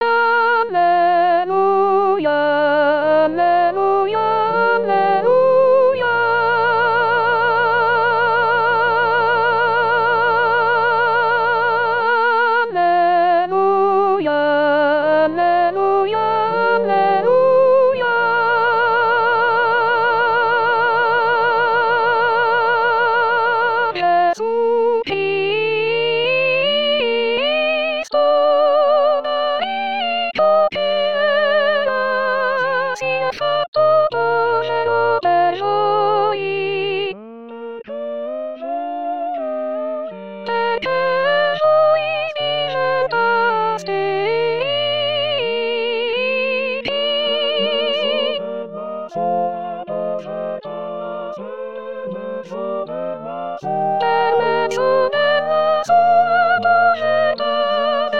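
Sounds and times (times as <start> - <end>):
sopranos singing a chant to the Gospel: 0.0 - 37.2, 37.8 - 58.1.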